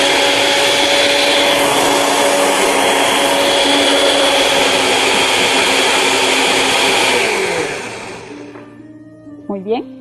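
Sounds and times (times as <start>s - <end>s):
household blender blending milk and oil at high speed: 0.0s - 8.7s.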